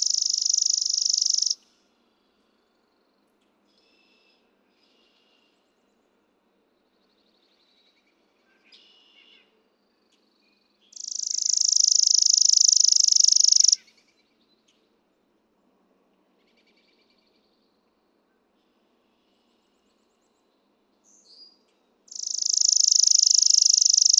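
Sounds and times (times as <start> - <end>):
Chipping Sparrow singing a long flat rattling trill: 0.0 - 1.6, 11.0 - 13.8, 22.1 - 24.1.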